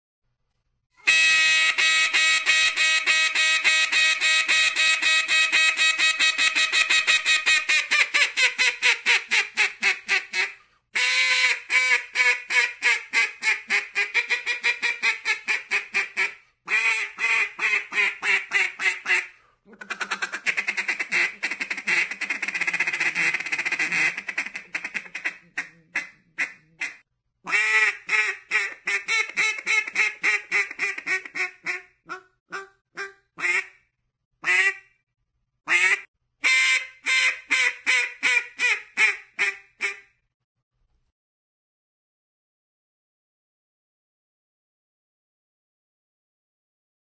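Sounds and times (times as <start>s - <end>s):
duck quacking: 1.1s - 33.8s, 34.4s - 34.9s, 35.7s - 40.1s.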